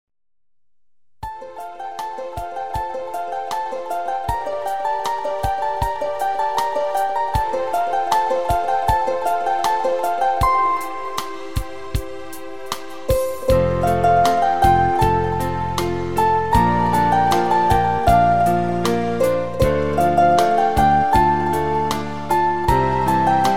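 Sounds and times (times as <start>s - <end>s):
instrumental song: 1.2s - 23.5s.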